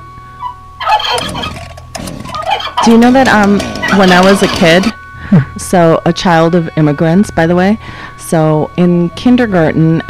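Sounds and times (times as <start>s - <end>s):
turkey gobbling: 0.4s - 5.0s
speech: 2.8s - 10.0s.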